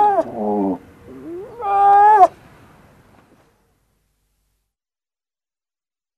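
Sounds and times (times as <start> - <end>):
grey seal moaning and wailing call: 0.0 - 2.3.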